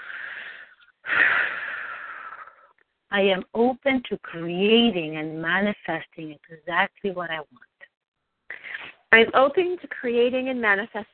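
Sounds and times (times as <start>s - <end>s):
deep breath: 0.0s - 2.8s
speech: 3.1s - 7.7s, 9.1s - 11.1s.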